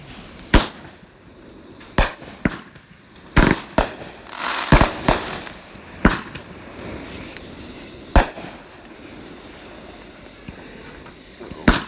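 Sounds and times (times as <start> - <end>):
fireworks crackling: 0.0 - 11.8
fireworks exploding beside a road: 1.9 - 7.1, 8.1 - 8.8.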